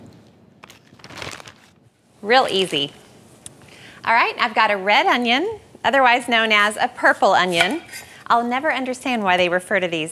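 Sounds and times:
plastic bag crinkling and rustling: 0:00.6 - 0:01.8
speech: 0:02.2 - 0:03.0, 0:04.0 - 0:10.0.

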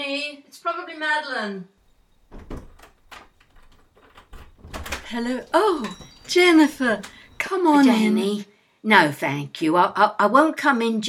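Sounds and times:
speech: 0:00.3 - 0:01.8, 0:05.1 - 0:11.0
front door latch and handle knocking and rattling: 0:01.8 - 0:07.5.

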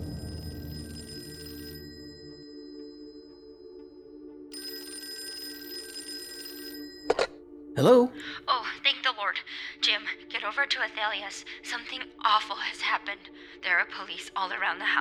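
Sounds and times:
telephone ringing with electronic trill: 0:00.0 - 0:03.4, 0:04.5 - 0:07.4
low hum: 0:00.0 - 0:04.4
speech: 0:07.8 - 0:14.9.

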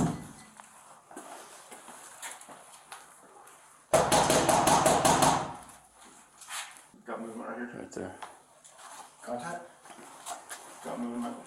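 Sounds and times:
police officers knocking on the door of a home: 0:04.0 - 0:05.6.

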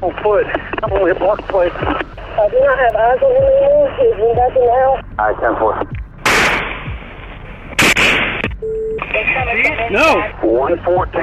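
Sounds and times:
speech: 0:00.0 - 0:06.0, 0:09.4 - 0:11.2
gunshots fired near a house during an active shooting: 0:06.2 - 0:06.9, 0:07.8 - 0:08.6.

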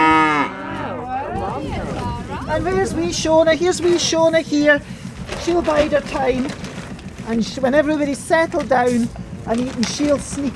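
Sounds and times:
Highland cow mooing in the south of Scotland: 0:00.0 - 0:01.2
speech: 0:02.5 - 0:06.6, 0:07.2 - 0:10.5.

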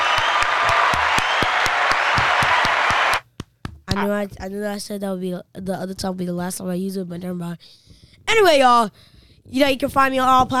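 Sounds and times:
crowd applauding: 0:00.0 - 0:03.3
speech: 0:03.9 - 0:10.5.

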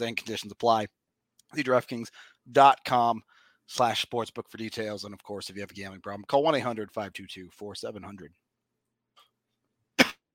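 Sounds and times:
speech: 0:00.0 - 0:08.4
sharp cough: 0:10.0 - 0:10.3.

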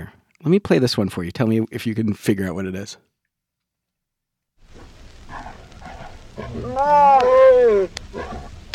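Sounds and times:
speech: 0:00.0 - 0:03.1, 0:06.5 - 0:08.4
tigers mating, grunting and growling: 0:04.8 - 0:08.6.

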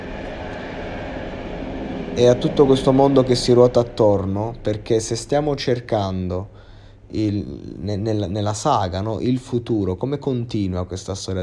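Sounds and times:
heavy rumble with broad roaring noise: 0:00.0 - 0:09.0
speech: 0:02.2 - 0:11.4.

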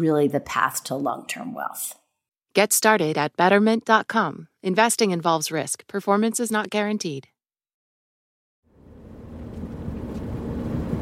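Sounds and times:
speech: 0:00.0 - 0:02.0, 0:02.6 - 0:07.3
four-wheel drive truck engine rumbling on a rough road: 0:08.7 - 0:11.0.

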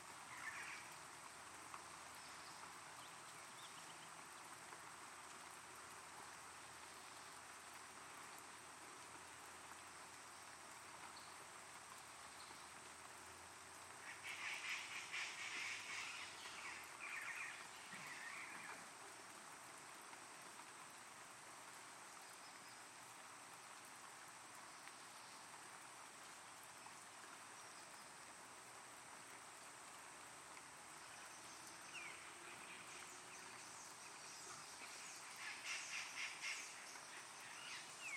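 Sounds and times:
light rain pattering through the jungle in Palenque Chiapas: 0:00.0 - 0:38.1.

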